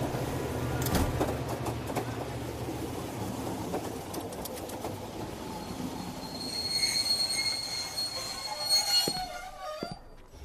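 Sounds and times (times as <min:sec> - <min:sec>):
passenger train arriving at a station with a rumbling roll: 0:00.0 - 0:10.4
passenger train wheels squealing as it slows: 0:05.4 - 0:10.4.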